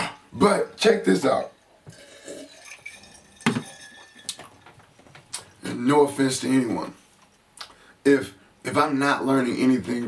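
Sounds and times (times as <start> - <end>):
speech: 0.4 - 2.0, 5.8 - 7.0, 8.0 - 10.0
glassware or dishes being handled while getting out a glass of water: 1.8 - 5.6.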